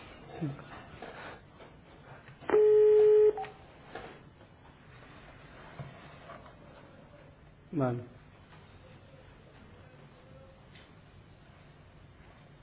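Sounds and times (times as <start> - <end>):
speech: 0.4 - 0.7, 7.8 - 8.2
telephone ringing or dialing tone: 2.5 - 3.6.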